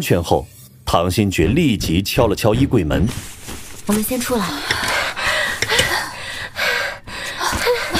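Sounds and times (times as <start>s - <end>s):
speech: 0.0s - 4.9s
several people panting and gasping after holding their breath in a cramped wardrobe: 4.4s - 7.9s.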